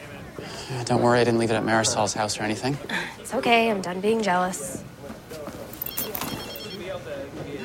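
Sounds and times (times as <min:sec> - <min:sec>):
speech: 0:00.4 - 0:04.8
short electronic phone message alert chime: 0:05.9 - 0:06.8.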